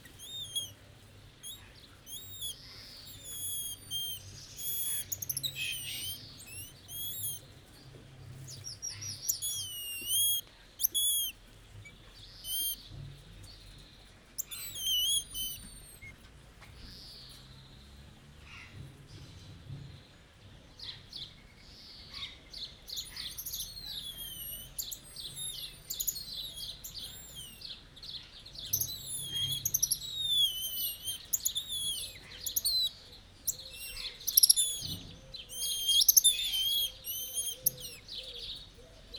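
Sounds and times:
emperor tamarins calling to each other in a zoo: 0.0 - 0.8, 1.4 - 7.5, 8.6 - 11.4, 12.4 - 12.8, 14.4 - 16.2, 22.8 - 27.8, 28.6 - 38.4.

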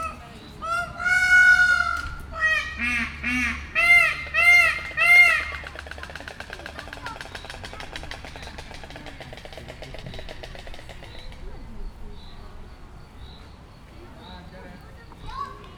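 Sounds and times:
peacock: 0.0 - 12.9.

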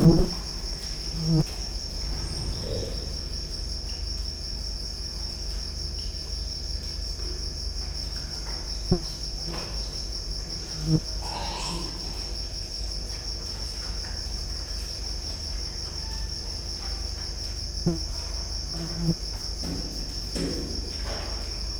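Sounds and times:
speech: 0.0 - 0.4, 1.3 - 1.6
cricket trilling at a zoo: 0.0 - 21.7
deep background rumble: 1.5 - 5.1.

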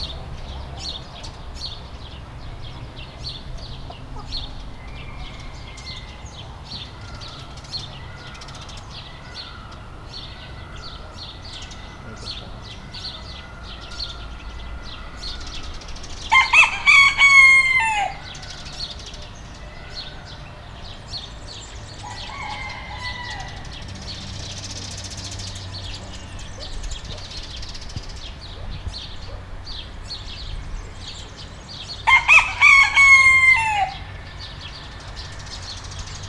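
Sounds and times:
rooster crowing in a farmyard: 2.4 - 25.5, 32.0 - 36.1.

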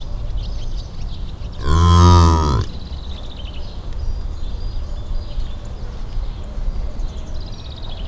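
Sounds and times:
scimitar-horned oryx bleating: 1.6 - 2.7.

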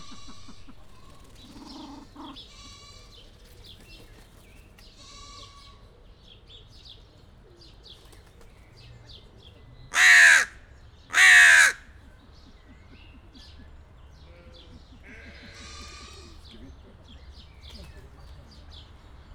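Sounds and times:
hooded crow calling at Kecskemét zoo: 0.0 - 2.9, 9.9 - 11.9.

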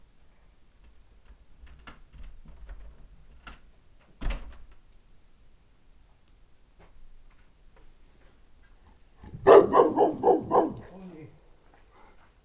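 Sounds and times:
St. Bernard and Moscow Watchdog mix dog barking in a farmyard: 9.3 - 11.4.

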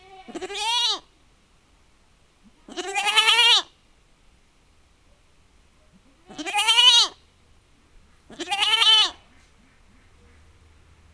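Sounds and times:
domestic goat bleating in a farmyard: 0.0 - 1.1, 2.7 - 3.7, 6.3 - 7.2, 8.3 - 9.5.

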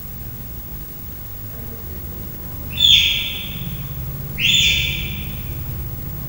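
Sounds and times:
three-month-old leopard cub chirping in a zoo: 2.5 - 5.9.

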